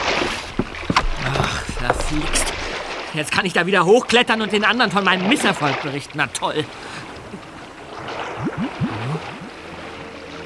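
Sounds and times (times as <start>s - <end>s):
water sloshing and splashing beneath a wooden surface: 0.0s - 10.4s
speech: 2.1s - 2.5s, 3.1s - 6.8s.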